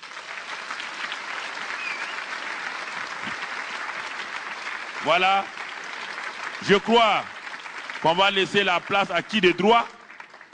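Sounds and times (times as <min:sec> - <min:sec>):
church congregation applauding after a prayer: 0:00.0 - 0:10.5
speech: 0:05.0 - 0:05.6, 0:06.6 - 0:07.3, 0:08.0 - 0:10.0.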